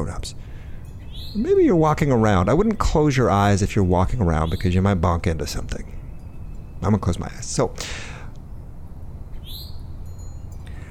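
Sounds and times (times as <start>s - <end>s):
speech: 0.0s - 0.4s, 1.3s - 6.0s, 6.8s - 8.2s
bird chirping in trees: 0.5s - 10.8s.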